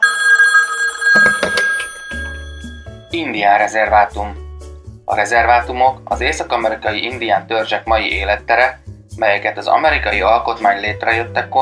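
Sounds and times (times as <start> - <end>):
smartphone ringing: 0.0 - 3.2
speech: 3.2 - 4.4, 5.1 - 11.6.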